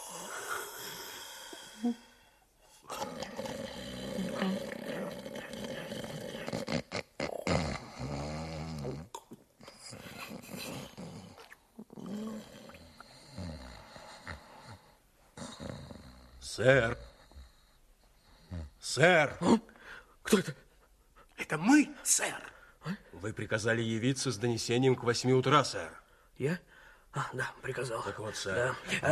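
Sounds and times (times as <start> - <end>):
sleeping man snoring loudly and roughly: 0.0 - 2.0, 2.8 - 9.1, 9.8 - 17.6
speech: 1.8 - 2.1, 16.6 - 17.1, 18.9 - 19.7, 20.3 - 20.6, 21.6 - 22.5, 23.2 - 29.0.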